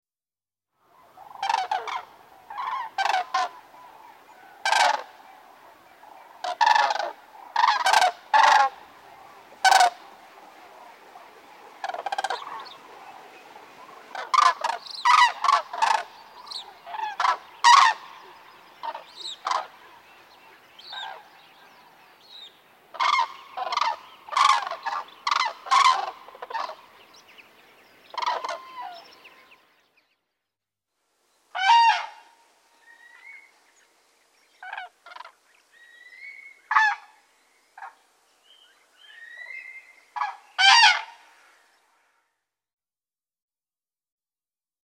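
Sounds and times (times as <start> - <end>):
common crane: 0.9 - 30.2, 31.5 - 41.9.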